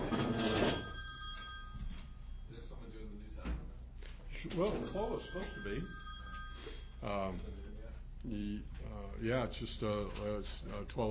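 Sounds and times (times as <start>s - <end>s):
old-style telephone bell ringing: 0.0s - 3.5s, 4.3s - 7.9s
speech: 4.5s - 6.0s, 7.0s - 11.0s.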